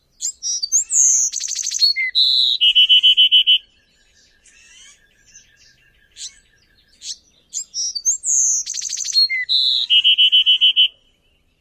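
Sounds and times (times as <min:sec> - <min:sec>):
Bewick's wren singing: 0:00.0 - 0:11.5.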